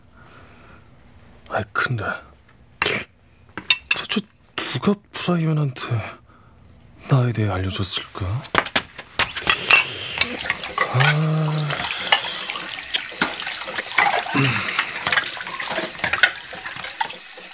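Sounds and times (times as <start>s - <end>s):
speech: 1.6s - 2.3s, 4.8s - 6.2s, 7.1s - 8.6s, 10.9s - 11.8s
tap water running and splashing: 8.4s - 17.5s
sharp knocks of plates and utensils: 8.5s - 9.8s
dishes clattering and clinking in a sink: 8.5s - 17.4s.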